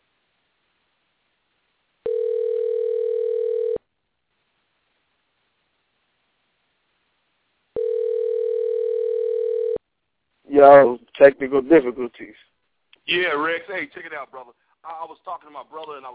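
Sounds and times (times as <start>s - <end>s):
electronic telephone tone on a phone line: 2.0s - 3.8s, 7.8s - 9.8s
speech: 10.6s - 16.1s.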